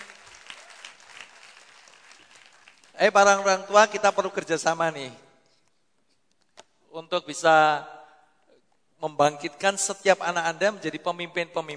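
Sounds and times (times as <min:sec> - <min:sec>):
crowd clapping for performers: 0:00.0 - 0:03.0
speech: 0:03.0 - 0:05.2, 0:07.0 - 0:08.0, 0:09.0 - 0:11.7.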